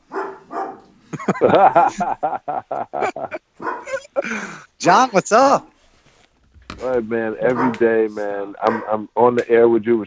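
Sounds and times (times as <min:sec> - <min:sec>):
dog barking: 0:00.0 - 0:00.9, 0:03.6 - 0:04.1, 0:07.4 - 0:09.1
dog excitedly yelping: 0:00.0 - 0:00.9, 0:03.6 - 0:04.2, 0:07.5 - 0:07.9, 0:08.6 - 0:09.0
laughter: 0:01.0 - 0:04.6
speech: 0:01.3 - 0:05.7, 0:06.8 - 0:10.0.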